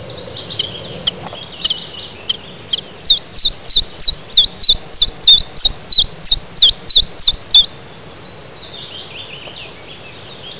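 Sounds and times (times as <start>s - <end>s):
common chiffchaff singing: 0.0s - 8.5s.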